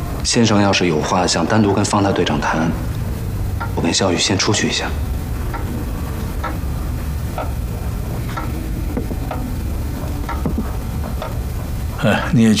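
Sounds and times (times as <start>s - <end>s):
speech: 0.2s - 2.9s, 3.8s - 5.2s, 12.0s - 12.5s
food sizzling in a pot on a fire: 2.7s - 12.0s.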